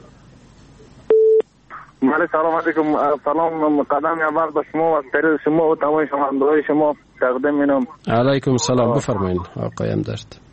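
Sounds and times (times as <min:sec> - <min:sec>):
phone line beep as a caller is connected: 0:01.1 - 0:01.4
speech: 0:02.1 - 0:10.4.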